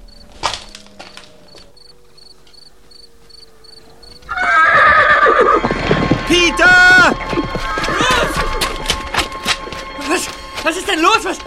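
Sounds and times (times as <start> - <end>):
crickets chirping: 0.0 - 11.4
horse whinnying: 4.2 - 6.1, 7.4 - 8.8
speech: 10.9 - 11.4.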